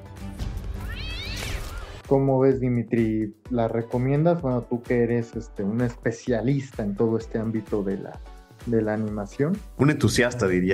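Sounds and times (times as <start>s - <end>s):
kitten meowing: 0.8s - 2.0s
speech: 2.1s - 10.7s.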